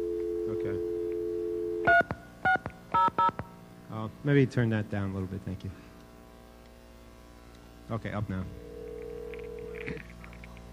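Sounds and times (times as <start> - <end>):
telephone dial tone: 0.0 - 2.0, 8.6 - 10.0
speech: 4.1 - 5.9, 7.9 - 8.6, 9.8 - 10.1.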